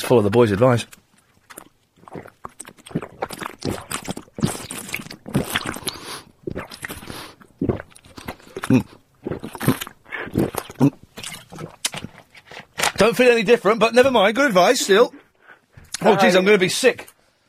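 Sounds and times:
speech: 0.1 - 1.0, 13.1 - 15.2, 16.0 - 17.1
person gulping water: 1.1 - 12.8
small mouth noises: 1.5 - 12.4, 14.3 - 16.7.

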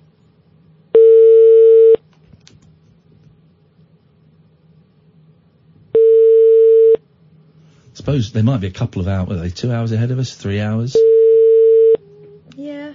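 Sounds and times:
faint low hum: 0.0 - 12.9
ringback tone on outgoing international call to a restaurant in Turkey: 1.0 - 2.0, 6.0 - 7.0, 11.0 - 12.0
speech: 8.1 - 11.1.

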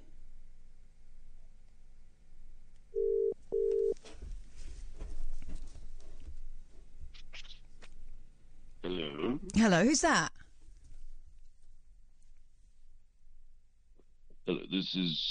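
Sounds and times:
telephone dialing tones: 3.0 - 4.0
rustling and clattering handling noise: 4.0 - 8.2
speech: 8.9 - 10.4, 14.9 - 15.2.

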